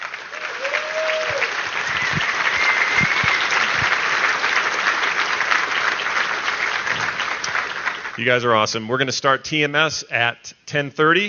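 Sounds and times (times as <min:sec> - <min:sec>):
applause from a large audience: 0:00.0 - 0:08.2
audience cheers and whistles: 0:00.2 - 0:04.3
speech: 0:08.2 - 0:11.2.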